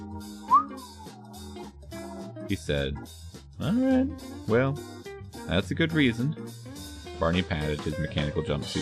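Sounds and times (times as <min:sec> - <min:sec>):
person whistling a rising note: 0:00.0 - 0:01.4
speech: 0:02.5 - 0:08.8.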